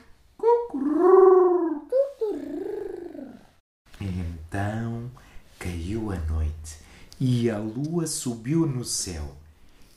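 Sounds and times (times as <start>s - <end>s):
voice imitating a dove cooing: 0.4s - 3.6s
speech: 6.2s - 9.4s.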